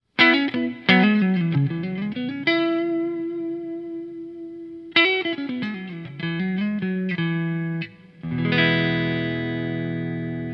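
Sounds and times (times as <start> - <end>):
electric guitar with riverbottom neck: 0.0 - 10.5.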